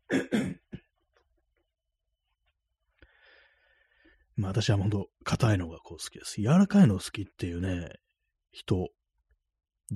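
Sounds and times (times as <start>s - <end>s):
person clearing throat: 0.0s - 0.9s
speech: 4.5s - 9.0s.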